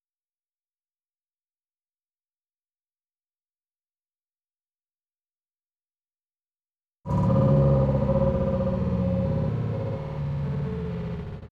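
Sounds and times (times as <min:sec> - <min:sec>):
engine revving: 0:07.1 - 0:11.5.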